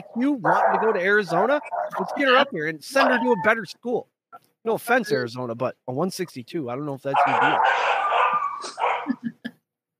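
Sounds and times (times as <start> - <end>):
dogs in a kennel barking sharply: 0.0 - 3.4, 7.1 - 9.2
speech: 0.2 - 9.4
dogs in a kennel whining and whimpering: 1.3 - 3.6, 7.4 - 9.2.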